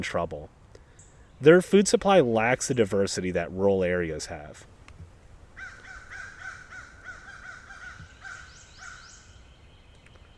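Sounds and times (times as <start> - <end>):
speech: 0.0 - 0.6, 1.4 - 4.7
crows cawing: 5.6 - 9.3.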